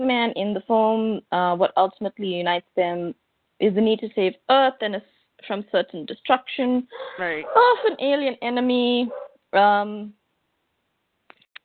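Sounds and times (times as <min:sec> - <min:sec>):
speech: 0:00.1 - 0:10.2
loud dog bark: 0:07.4 - 0:08.0.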